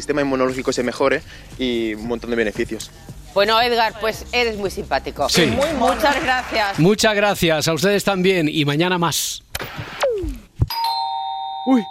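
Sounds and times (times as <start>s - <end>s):
speech: 0.0s - 10.0s, 11.6s - 11.8s
doorbell chime: 10.7s - 11.8s.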